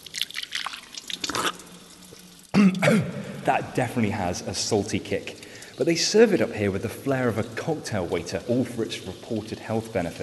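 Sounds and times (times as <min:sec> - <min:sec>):
mineral water pouring and splashing into a glass in Bad Kissingen Germany: 0:00.0 - 0:10.2
speech: 0:02.6 - 0:10.2.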